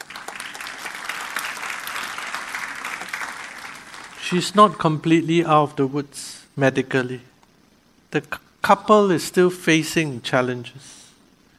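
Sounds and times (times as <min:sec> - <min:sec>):
crowd clapping as a clap offering to the Lord: 0:00.0 - 0:04.8
speech: 0:04.3 - 0:07.3, 0:08.1 - 0:11.0.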